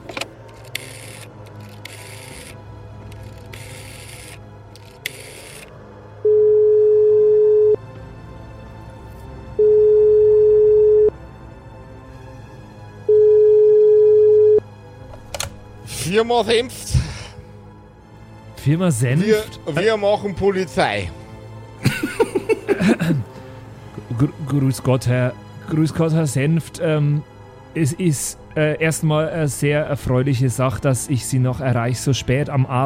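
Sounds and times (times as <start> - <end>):
telephone ringback tone while placing call: 5.1 - 7.8, 9.6 - 11.1, 13.1 - 14.6
handling noise from lifting telephone receiver and dialing: 15.1 - 15.6
speech: 16.2 - 17.0, 18.6 - 21.2, 22.8 - 23.3, 24.2 - 32.8
laughter: 21.8 - 23.3.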